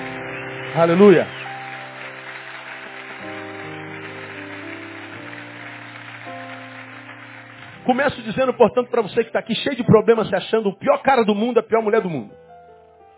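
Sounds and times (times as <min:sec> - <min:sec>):
audience applauding: 0:00.0 - 0:09.1
sustained organ-like chords: 0:00.0 - 0:10.7
speech: 0:00.7 - 0:01.5, 0:07.9 - 0:12.4.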